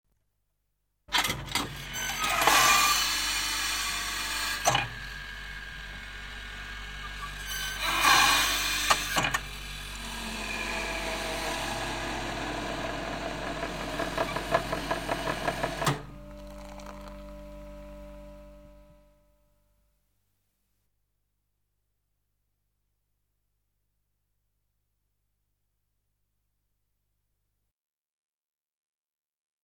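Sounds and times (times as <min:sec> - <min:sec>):
grinding wheel in a blacksmith workshop: 0:01.6 - 0:19.0.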